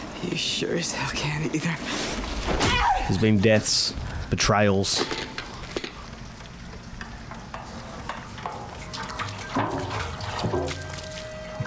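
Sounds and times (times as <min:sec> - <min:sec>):
speech: 0:00.2 - 0:05.3
gasoline being poured and splashed around: 0:08.0 - 0:11.6
gasoline dripping: 0:08.4 - 0:11.4.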